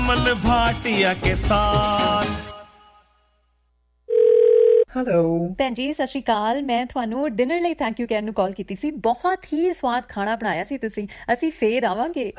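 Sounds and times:
speech: 0.1 - 2.4, 5.0 - 12.3
telephone dial tone: 4.1 - 4.9.

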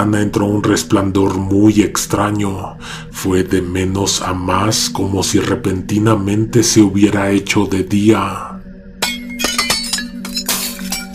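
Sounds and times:
speech: 0.0 - 8.5
glass object shattering inside a house: 9.0 - 11.1
glass shards tinkling and settling: 9.0 - 11.1.

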